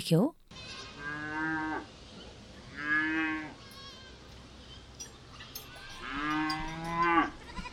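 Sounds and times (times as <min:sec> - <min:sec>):
cows mooing while grazing in a meadow: 0:00.6 - 0:01.9, 0:02.7 - 0:04.4, 0:05.5 - 0:07.7.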